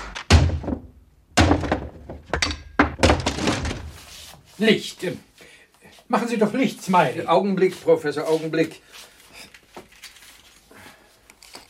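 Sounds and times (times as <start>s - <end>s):
locked wooden workshop door forced open with heavy thuds: 0.3s - 3.9s
speech: 4.6s - 5.3s, 6.1s - 9.1s.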